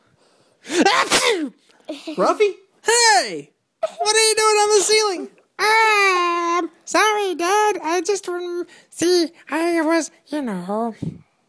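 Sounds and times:
single loud breathy voiced sneeze: 0.6 - 2.4
speech: 1.3 - 11.2.

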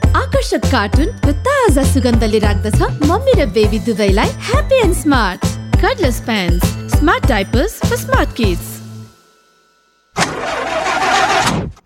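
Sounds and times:
speech: 0.4 - 8.7
old broken-down car engine starting: 10.2 - 11.8.

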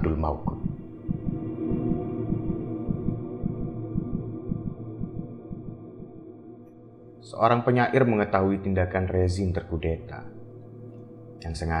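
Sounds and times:
constant droning hum: 0.0 - 11.7
speech: 0.2 - 0.6, 7.4 - 10.4, 11.4 - 11.7
woman's fast pounding heartbeat: 0.4 - 6.2.

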